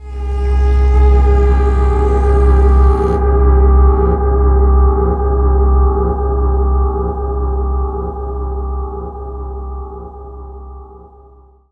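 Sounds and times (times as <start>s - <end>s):
Arabian drone: 0.0s - 11.6s.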